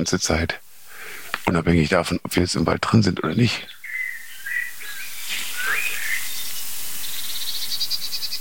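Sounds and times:
speech: 0:00.0 - 0:00.6, 0:01.4 - 0:03.8
steady outdoor hiss: 0:00.0 - 0:08.3
tits calling in short sharp chirps and whistled notes: 0:00.8 - 0:08.3.

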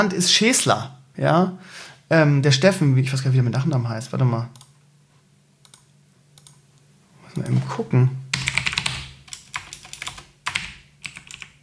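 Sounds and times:
speech: 0:00.0 - 0:04.6, 0:07.4 - 0:08.2
rapid typing on a computer keyboard: 0:08.4 - 0:11.6.

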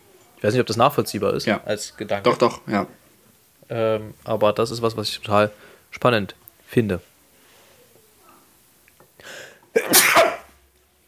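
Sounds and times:
speech: 0:00.4 - 0:03.0, 0:03.7 - 0:07.1
person sneezing: 0:09.3 - 0:10.6.

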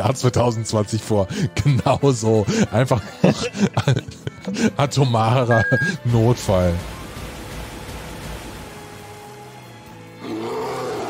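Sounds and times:
speech: 0:00.0 - 0:07.0
laughter: 0:01.8 - 0:04.9
mutated bears roaring: 0:10.2 - 0:11.0.

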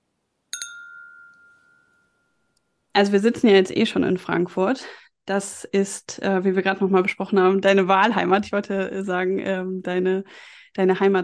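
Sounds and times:
drinking glasses clinking in a toast: 0:00.5 - 0:02.6
clear ringing tone of drinking glasses: 0:00.5 - 0:02.9
speech: 0:03.0 - 0:11.2.

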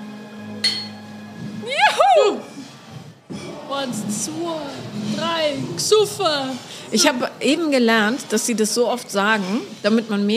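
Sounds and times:
beer glasses clinking in a toast: 0:00.6 - 0:01.1
speech: 0:03.8 - 0:10.3.

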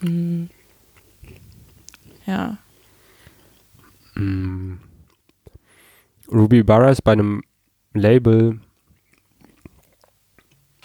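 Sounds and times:
speech: 0:00.0 - 0:00.6, 0:02.3 - 0:02.6, 0:04.2 - 0:04.8, 0:06.3 - 0:08.6
chewing food: 0:00.5 - 0:05.6, 0:07.4 - 0:10.8.

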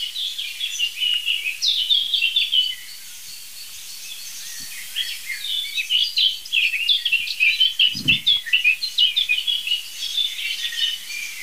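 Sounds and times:
blackbird singing: 0:00.0 - 0:11.4
brief low thump: 0:07.8 - 0:08.4.

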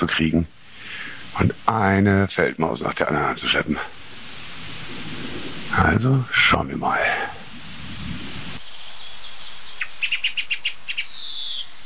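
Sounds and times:
speech: 0:00.0 - 0:04.0, 0:05.7 - 0:07.2
steady background hiss: 0:00.0 - 0:11.8
song thrush alarm-calling in a big old oak, mobbing a tawny owl: 0:08.4 - 0:11.8.

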